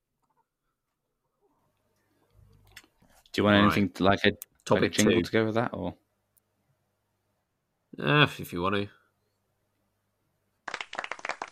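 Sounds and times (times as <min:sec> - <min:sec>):
speech: 0:03.4 - 0:06.0, 0:08.0 - 0:09.0
handful of hands clapping briskly and unevenly: 0:10.6 - 0:11.5.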